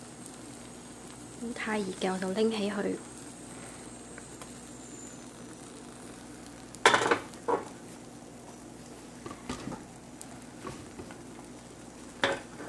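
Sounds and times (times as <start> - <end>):
egg mixture frying in a pan on low heat: 0.0 - 12.6
speech: 1.4 - 3.1.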